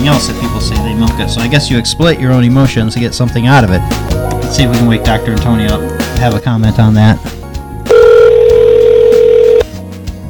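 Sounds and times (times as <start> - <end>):
speech: 0.1 - 7.4
house phone electronic ring tone: 7.9 - 9.7.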